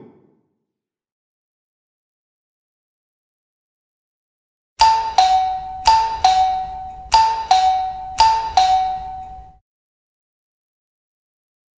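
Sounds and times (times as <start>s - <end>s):
doorbell chiming a two-tone ding-dong: 4.8s - 9.6s.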